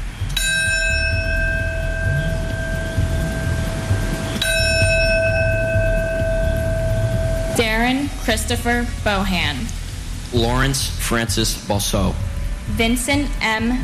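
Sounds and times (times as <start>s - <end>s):
low outdoor rumble: 0.0s - 13.8s
large resonant memorial bell tolling: 0.4s - 8.3s
speech: 7.9s - 13.8s.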